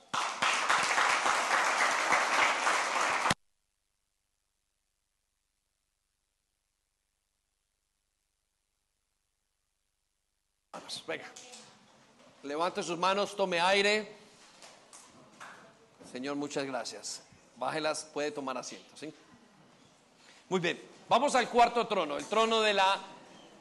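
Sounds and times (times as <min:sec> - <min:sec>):
church audience applauding: 0:00.0 - 0:03.4
speech: 0:10.9 - 0:11.6, 0:12.4 - 0:14.2, 0:16.1 - 0:19.2, 0:20.5 - 0:23.2.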